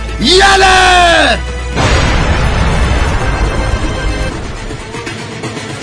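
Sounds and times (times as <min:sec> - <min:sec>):
speech: 0:00.2 - 0:01.6
enemy bunker being blown up in battle: 0:01.8 - 0:05.0.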